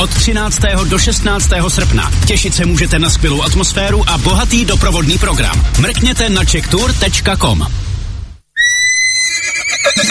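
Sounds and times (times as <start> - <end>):
speech: 0.0 - 7.9, 9.8 - 10.0
horse neighing: 8.6 - 10.0.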